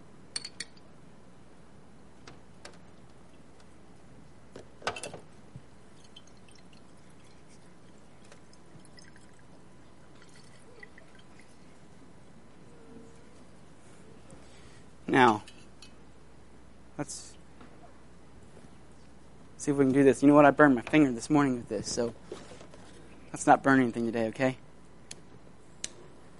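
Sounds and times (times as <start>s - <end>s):
soft steady hiss: 0.0s - 26.3s
wet rag dripping water: 6.0s - 9.5s
speech: 15.1s - 15.5s, 19.6s - 22.2s, 23.4s - 24.6s.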